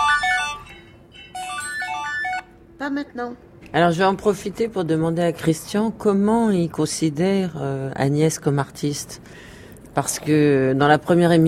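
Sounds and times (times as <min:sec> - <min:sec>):
telephone ringtone bright electronic melody of bell-like notes: 0:00.0 - 0:02.6
speech: 0:02.9 - 0:11.4.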